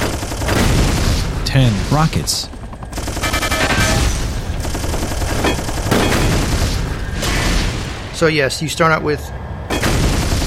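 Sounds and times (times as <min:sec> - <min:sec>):
machine-gun fire in a video game: 0:00.0 - 0:07.5, 0:09.8 - 0:10.4
speech: 0:01.5 - 0:02.6, 0:08.2 - 0:09.4.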